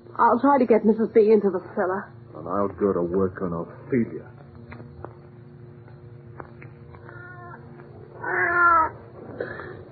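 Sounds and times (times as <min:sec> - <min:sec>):
speech: 0:00.2 - 0:04.4
cat meowing: 0:07.1 - 0:07.6, 0:08.2 - 0:09.0.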